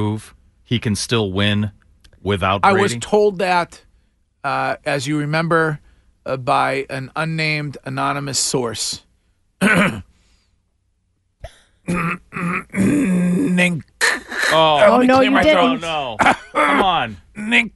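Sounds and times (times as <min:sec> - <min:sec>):
speech: 0:00.0 - 0:03.8, 0:04.4 - 0:10.1, 0:11.9 - 0:17.7
person clearing throat loudly: 0:09.6 - 0:10.1, 0:11.4 - 0:14.7, 0:16.2 - 0:17.0
drawn-out vocal grunts and groans: 0:11.9 - 0:13.8.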